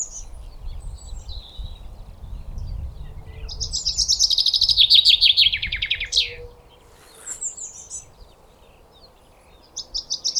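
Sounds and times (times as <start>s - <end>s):
Common chaffinch Fringilla coelebs song phrase: 0.0s - 10.3s
Common chaffinch Fringilla coelebs thin high calls: 3.4s - 10.3s.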